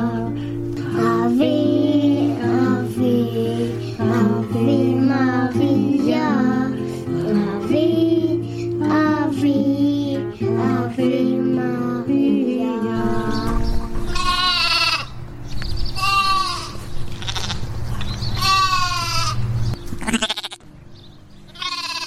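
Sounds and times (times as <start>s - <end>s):
low rumble of noise: 0.0s - 22.0s
several sheep bleating in a garden: 14.1s - 15.2s, 16.0s - 17.6s, 18.4s - 19.4s, 20.0s - 20.6s, 21.6s - 22.0s.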